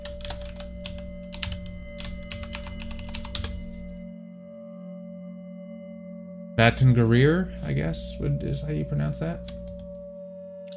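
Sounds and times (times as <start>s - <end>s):
rapid typing on a computer keyboard: 0.0s - 4.0s, 9.4s - 9.9s
speech: 6.6s - 9.6s.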